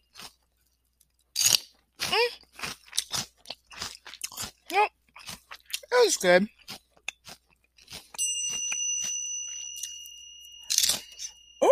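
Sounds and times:
wet crackly chewing of small crunchy food: 0:00.0 - 0:08.6
crisp bite into a small baby-sized piece of crunchy food: 0:01.3 - 0:05.9, 0:06.6 - 0:08.2
speech: 0:06.1 - 0:06.6.

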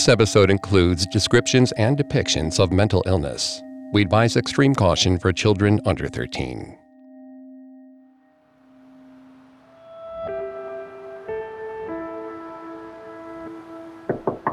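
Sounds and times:
speech: 0:00.0 - 0:06.8
sustained electronic tones humming: 0:00.0 - 0:14.5
knocks on the front door of a brick duplex: 0:14.1 - 0:14.5.

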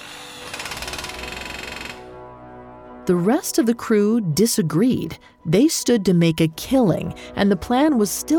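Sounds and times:
power tool whirring and pounding: 0:00.0 - 0:02.1
speech: 0:03.1 - 0:08.3.

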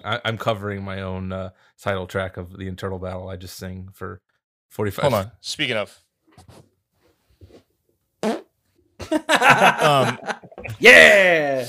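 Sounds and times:
speech: 0:00.0 - 0:06.7, 0:09.1 - 0:11.6
long squeaky wavering fart: 0:08.2 - 0:08.5
chuckling voices: 0:09.0 - 0:10.8.

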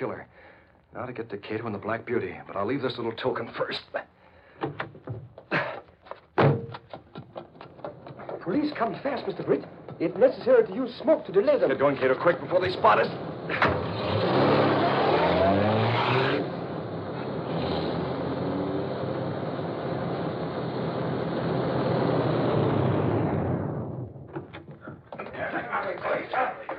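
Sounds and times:
speech: 0:00.0 - 0:05.3, 0:08.5 - 0:14.0
laughter: 0:05.5 - 0:05.9, 0:13.5 - 0:13.9, 0:25.2 - 0:26.7
car engine revving as the vehicle pulls away: 0:08.5 - 0:24.2.

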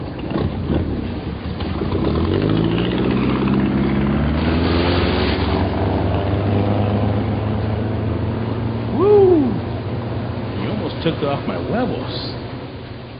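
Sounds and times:
aircraft propeller engine starting and revving up: 0:00.3 - 0:12.9
speech: 0:11.2 - 0:12.4.

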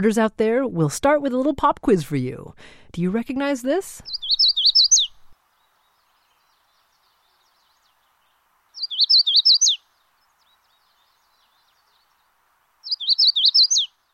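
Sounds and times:
speech: 0:00.0 - 0:04.2
Magnolia warbler song: 0:04.0 - 0:14.0.

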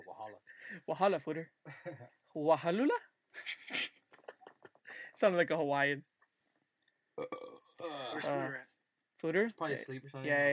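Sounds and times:
speech: 0:00.2 - 0:03.8, 0:05.2 - 0:06.1, 0:07.2 - 0:08.6, 0:09.2 - 0:10.5
loud throaty belch: 0:07.2 - 0:08.2.

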